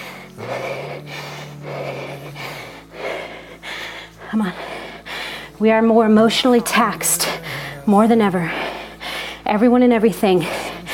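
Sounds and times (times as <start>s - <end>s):
heavy rasping breathing of a runner racing at lactic threshold: 0.0s - 10.9s
low steady hum: 0.0s - 10.9s
speech: 4.3s - 4.7s, 5.6s - 7.3s, 7.9s - 8.6s, 9.5s - 10.6s.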